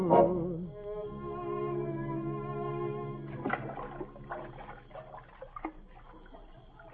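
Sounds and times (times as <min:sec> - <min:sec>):
sustained musical tone: 0:00.0 - 0:06.9
speech: 0:00.1 - 0:00.4
oars dipping and splashing through water rowing a boat: 0:02.1 - 0:06.9.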